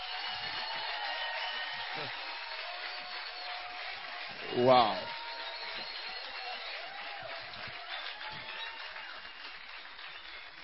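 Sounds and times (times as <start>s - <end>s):
audience clapping in a large room: 0.0s - 10.6s
speech: 2.0s - 2.2s, 4.5s - 5.1s.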